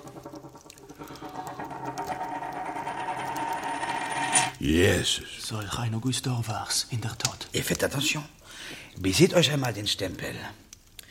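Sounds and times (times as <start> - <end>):
gold coin set down on a table: 1.3 - 4.6
speech: 4.6 - 10.6.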